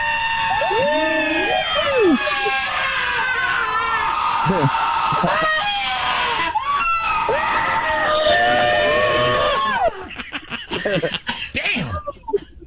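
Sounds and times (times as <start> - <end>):
people screaming shrilly at a Halloween horror theme-park event in Hollywood: 0.0 - 10.1
speech: 4.5 - 5.2
laughter: 4.5 - 5.7, 9.2 - 12.6.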